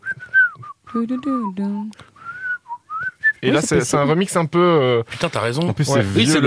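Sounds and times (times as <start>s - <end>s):
man whistling a lilting melody: 0.0s - 1.5s, 2.2s - 3.4s
speech: 0.9s - 2.1s, 3.4s - 6.4s.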